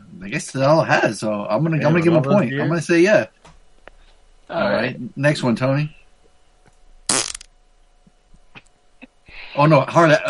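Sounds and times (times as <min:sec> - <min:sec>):
speech: 0:00.2 - 0:03.5, 0:04.5 - 0:06.0, 0:09.6 - 0:10.2
loud fart: 0:07.1 - 0:07.5.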